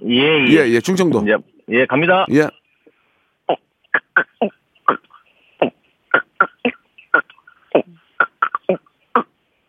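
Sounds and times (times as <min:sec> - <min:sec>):
speech: 0:00.0 - 0:02.6, 0:04.2 - 0:05.1
voice imitating the croaking of a Chungcheong Province frog: 0:03.5 - 0:09.4.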